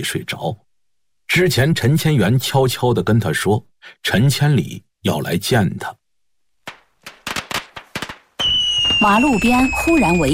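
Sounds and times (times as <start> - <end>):
speech: 0.0 - 0.7, 1.3 - 6.0, 9.0 - 10.3
firecrackers crackling and exploding at a roadside gathering: 6.7 - 9.7
rockets shooting up and bursting in the air: 6.7 - 9.7.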